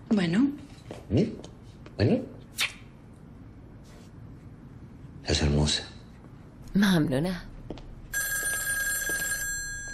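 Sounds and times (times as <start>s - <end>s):
speech: 0.1s - 2.3s, 5.4s - 5.9s, 6.8s - 7.5s
telephone bell ringing: 8.1s - 9.9s.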